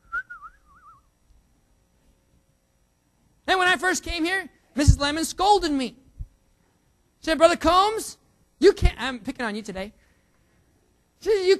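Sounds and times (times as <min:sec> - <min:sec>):
person whistling a short bright tune: 0:00.0 - 0:01.1
speech: 0:03.8 - 0:06.0, 0:07.2 - 0:10.0, 0:11.2 - 0:11.5.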